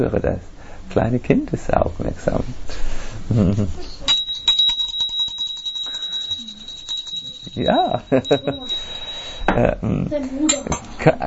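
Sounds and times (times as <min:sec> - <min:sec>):
speech: 0:00.0 - 0:03.9, 0:07.6 - 0:09.0, 0:09.6 - 0:11.2
bell with bright high tone ringing: 0:04.1 - 0:09.8.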